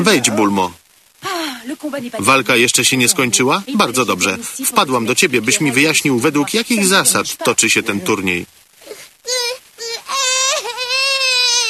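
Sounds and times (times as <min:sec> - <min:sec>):
speech: 0:00.0 - 0:00.8, 0:01.6 - 0:08.6
baby crying: 0:08.8 - 0:11.6.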